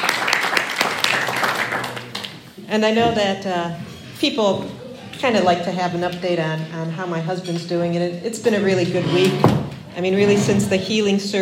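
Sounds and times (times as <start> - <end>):
audience applause: 0.0 - 2.6
speech: 2.7 - 11.4.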